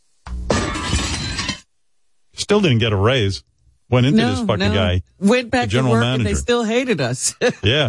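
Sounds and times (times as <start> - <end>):
glass shattering: 0.5 - 1.7
speech: 2.5 - 7.8
laughter: 7.2 - 7.8.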